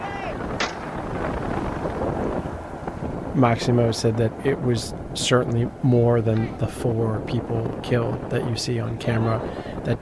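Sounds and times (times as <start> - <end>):
constant roaring rumble of wind at sea: 0.0 - 10.0
gun fired from a boat at sea: 0.6 - 1.0
speech: 3.4 - 10.0.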